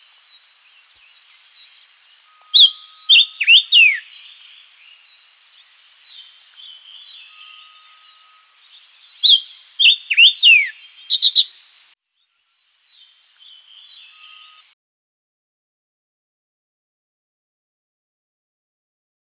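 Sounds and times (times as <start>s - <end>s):
Silver-eared mesia song: 0.0s - 14.7s.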